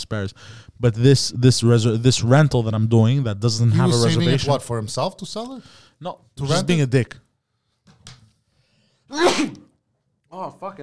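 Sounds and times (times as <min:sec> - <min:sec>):
speech: 0:00.1 - 0:07.2, 0:09.1 - 0:09.6, 0:10.3 - 0:10.8
short sharp inhale: 0:08.5 - 0:09.1
congested person sneezing loudly: 0:09.1 - 0:09.7.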